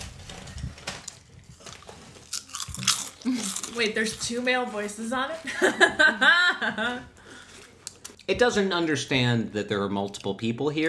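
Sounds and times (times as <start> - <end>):
crunchy food being chewed: 1.0 - 4.2
speech: 3.2 - 7.2, 8.3 - 10.8.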